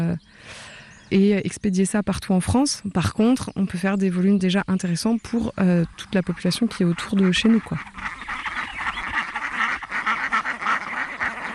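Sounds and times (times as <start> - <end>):
speech: 0.0 - 8.2
flock of Indian Runner ducks quacking: 5.3 - 11.5.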